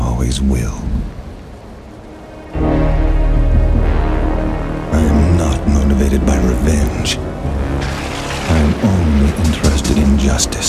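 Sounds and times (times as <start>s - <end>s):
heavy rain pouring: 0.0s - 10.6s
speech: 0.2s - 1.2s, 6.1s - 7.9s, 8.6s - 10.6s
low droning tone: 2.1s - 10.4s.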